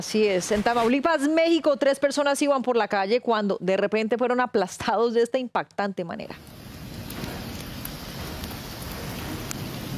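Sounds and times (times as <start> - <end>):
speech: 0.0 - 6.6
heavy rain pouring down: 6.4 - 9.9.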